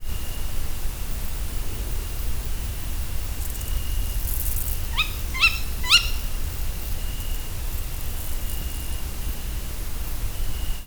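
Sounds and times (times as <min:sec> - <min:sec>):
cricket chirping in nature: 0:00.1 - 0:10.8
tawny owl calling in nature: 0:04.4 - 0:06.6.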